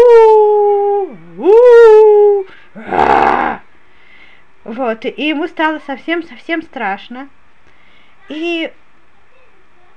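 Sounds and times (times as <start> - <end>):
loud animal howl: 0.0 - 3.6
short rough animal snarling burst: 2.7 - 3.6
speech: 4.8 - 7.4, 8.3 - 8.8.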